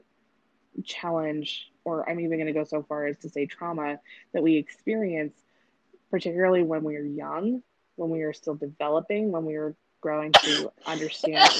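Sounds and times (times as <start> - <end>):
speech: 0.8 - 5.5, 6.1 - 11.5
single short sharp sneeze: 10.4 - 11.5.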